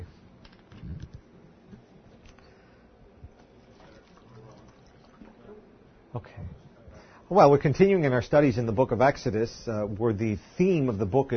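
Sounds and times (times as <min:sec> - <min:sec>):
water pouring into a container in a soft trickle: 0:03.5 - 0:05.4
speech: 0:06.2 - 0:06.6, 0:07.3 - 0:11.3.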